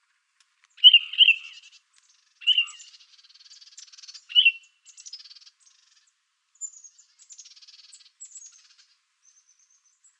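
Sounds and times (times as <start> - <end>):
dusky-capped flycatcher calling in Arizona: 0.8 - 9.5
dusky-capped flycatcher twittering: 0.8 - 9.8.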